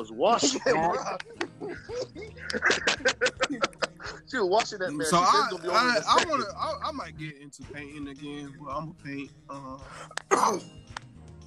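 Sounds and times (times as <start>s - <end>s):
laughter: 0.0s - 7.2s
speech: 0.0s - 11.0s
harsh cough: 1.7s - 4.3s, 10.2s - 10.7s.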